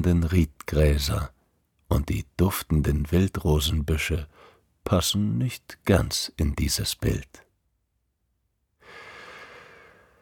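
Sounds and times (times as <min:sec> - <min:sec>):
speech: 0:00.0 - 0:07.4
deep breath in: 0:04.3 - 0:04.7, 0:08.8 - 0:10.2.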